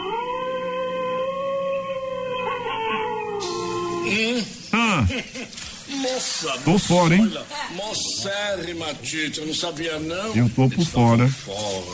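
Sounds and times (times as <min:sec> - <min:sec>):
person imitating a wolf howl with yelps: 0:00.0 - 0:04.2
speech: 0:04.1 - 0:11.9
laughter: 0:04.8 - 0:05.7.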